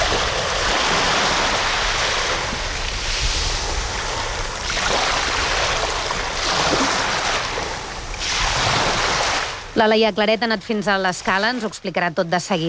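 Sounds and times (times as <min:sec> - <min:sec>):
wind buffeting the microphone: 0:00.0 - 0:09.8
sea waves breaking on the shore in l'Escala: 0:00.0 - 0:12.6
speech: 0:09.8 - 0:12.6.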